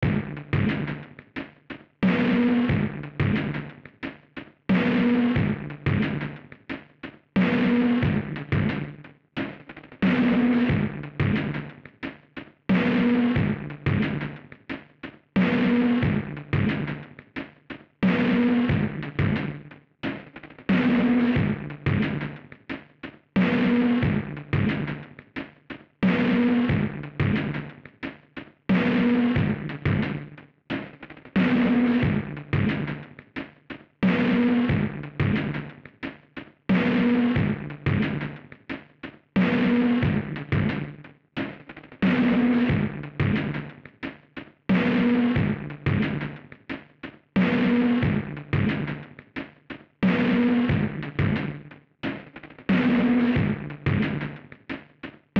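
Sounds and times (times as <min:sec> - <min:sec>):
drums: 0:00.0 - 0:55.3.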